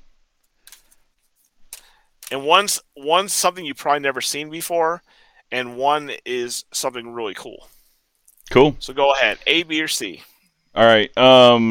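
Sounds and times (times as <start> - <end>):
cards or papers shuffling: 0.4 - 2.8
speech: 2.3 - 7.8, 8.5 - 11.7.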